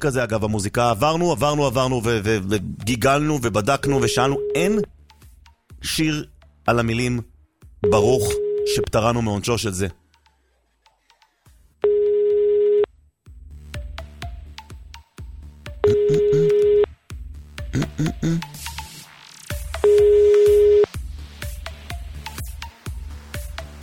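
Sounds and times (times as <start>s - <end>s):
speech: 0.0s - 5.0s, 5.8s - 10.0s, 18.0s - 18.5s
telephone ringback tone: 3.8s - 4.8s, 7.8s - 8.9s, 11.8s - 12.9s, 15.8s - 16.9s, 19.8s - 20.9s.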